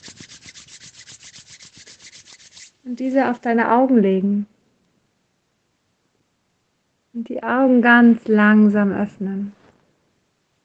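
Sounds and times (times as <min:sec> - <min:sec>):
hands rubbing together during a guided relaxation exercise: 0:00.0 - 0:03.4
speech: 0:02.8 - 0:04.5, 0:07.3 - 0:09.6.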